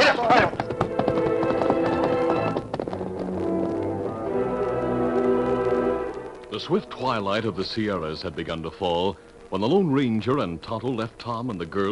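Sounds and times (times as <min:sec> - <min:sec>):
galloping ridden horses hoofbeats: 0:00.0 - 0:09.8
orchestral music cue: 0:00.8 - 0:08.8
speech: 0:06.6 - 0:11.8.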